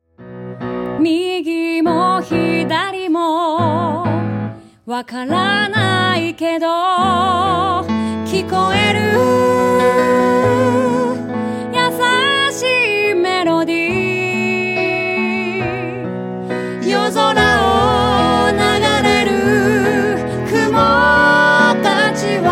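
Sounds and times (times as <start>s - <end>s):
piano: 0.0s - 22.4s.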